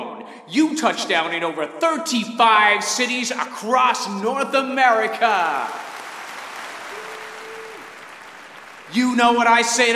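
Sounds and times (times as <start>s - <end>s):
speech: 0.3s - 5.8s, 8.9s - 9.9s
crowd applauding: 5.3s - 9.9s.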